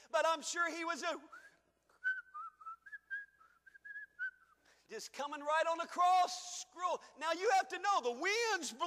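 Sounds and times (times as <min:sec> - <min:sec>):
speech: 0:00.1 - 0:01.5, 0:04.9 - 0:08.8
person whistling a short wandering melody: 0:01.3 - 0:04.6.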